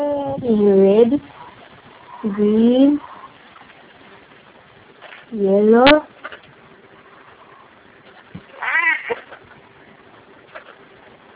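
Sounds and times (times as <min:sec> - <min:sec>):
quiet steady hum: 0:00.0 - 0:11.3
speech: 0:00.4 - 0:01.3, 0:02.2 - 0:03.0, 0:05.4 - 0:06.1
cat meowing: 0:08.6 - 0:09.3.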